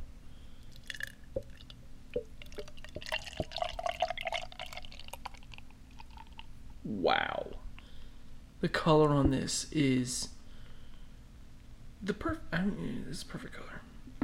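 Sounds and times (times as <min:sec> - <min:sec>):
fizzy bubbling crackle of beer: 0:00.7 - 0:06.6
beer pouring into a glass: 0:00.8 - 0:06.5
speech: 0:08.6 - 0:10.3, 0:12.1 - 0:13.7.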